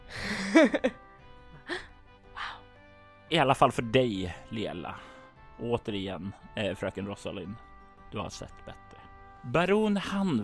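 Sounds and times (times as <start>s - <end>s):
person gasping: 0.0s - 0.6s, 1.5s - 2.7s
laughter: 0.3s - 1.0s
speech: 0.6s - 1.0s, 3.3s - 8.8s, 9.4s - 10.4s.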